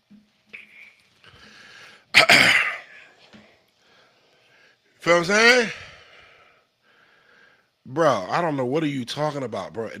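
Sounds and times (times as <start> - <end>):
breathy inhale: 1.2 - 2.1, 3.8 - 4.8, 5.8 - 7.8
loud raspy cough: 2.1 - 3.1
rough throat clearing: 2.2 - 3.2
speech: 5.1 - 5.8, 8.0 - 9.9.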